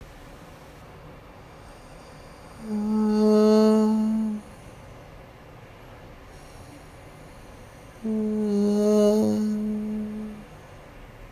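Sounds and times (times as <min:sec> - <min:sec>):
voice onset from abducted vocal folds: 0:02.6 - 0:04.5, 0:08.0 - 0:10.5.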